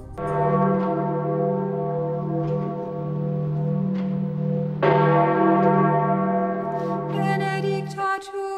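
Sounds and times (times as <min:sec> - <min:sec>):
15000 kilogram Jubilee bell ringing in the Vatican City gardens: 0:00.0 - 0:08.4.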